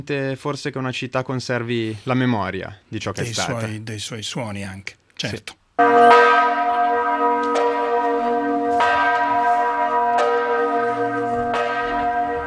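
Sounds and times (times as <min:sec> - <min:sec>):
speech: 0:00.0 - 0:06.6
powerful church bells ringing: 0:05.8 - 0:12.4.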